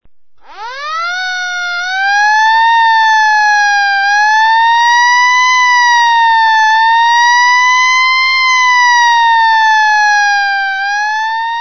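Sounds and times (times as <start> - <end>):
fire brigade siren: 0.4 - 11.5.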